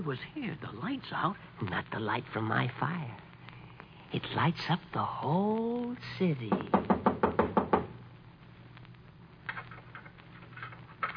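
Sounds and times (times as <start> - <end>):
speech: 0.0 - 3.3, 4.1 - 7.2
knocking on a door: 6.5 - 8.0.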